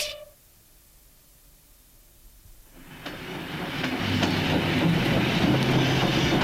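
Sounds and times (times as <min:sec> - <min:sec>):
train rumbling along the rails: 0:02.8 - 0:06.4.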